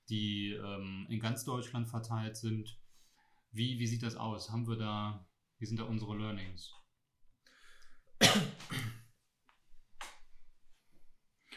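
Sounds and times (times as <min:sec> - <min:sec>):
speech: 0:00.1 - 0:02.8, 0:03.5 - 0:06.8, 0:08.2 - 0:09.0
faint breathy sounds: 0:02.8 - 0:03.5, 0:07.4 - 0:08.2
person coughing sharply: 0:08.2 - 0:09.1.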